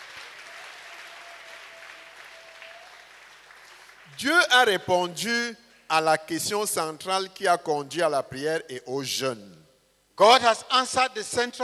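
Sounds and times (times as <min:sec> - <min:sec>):
crowd clapping: 0:00.0 - 0:04.2
speech: 0:04.1 - 0:09.6, 0:10.2 - 0:11.6.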